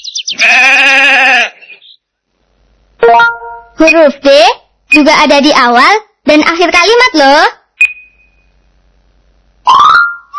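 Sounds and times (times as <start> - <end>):
sheep bleating: 0.4 - 1.7
speech: 3.8 - 7.6.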